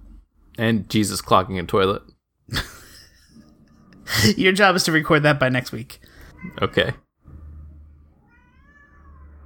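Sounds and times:
speech: 0.6s - 2.7s, 4.2s - 7.0s
cat yowling: 8.2s - 9.4s.

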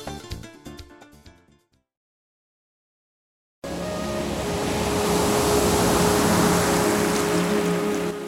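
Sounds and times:
low underlying hum: 3.6s - 8.2s
ocean waves: 3.6s - 8.2s
short musical passage: 3.6s - 8.2s.

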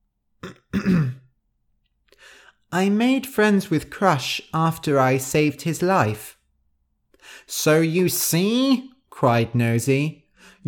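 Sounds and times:
person clearing throat: 0.4s - 1.3s
speech: 2.7s - 6.4s, 7.3s - 10.6s.

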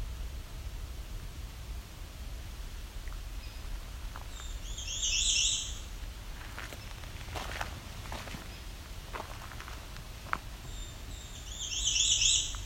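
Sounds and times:
steady hiss of outdoor noise: 0.0s - 12.6s
American Redstart high warbling song: 3.1s - 6.0s, 6.6s - 12.6s
hairy woodpecker giving sharp piercing calls: 4.3s - 5.9s, 9.5s - 12.6s.

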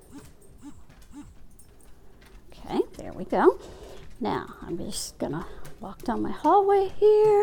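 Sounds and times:
dogs whimpering excitedly in a home hallway: 0.0s - 1.7s
speech: 3.2s - 7.4s.

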